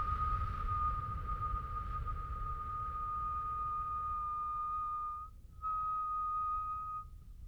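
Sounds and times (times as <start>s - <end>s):
person whistling a steady single-pitched tone on exhale as a breathing exercise: 0.0s - 7.4s.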